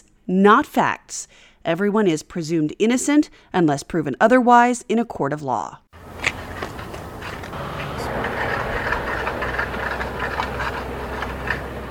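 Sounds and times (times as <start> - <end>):
speech: 0.3 - 5.8
cars and trucks whizzing past on a nearby road: 6.0 - 11.8.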